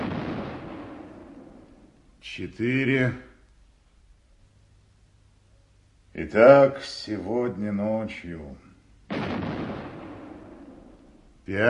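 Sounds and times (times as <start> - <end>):
six-inch artillery battery firing a salute: 0.0 - 2.0, 9.1 - 11.3
speech: 2.2 - 3.3, 6.2 - 8.7, 11.5 - 11.6.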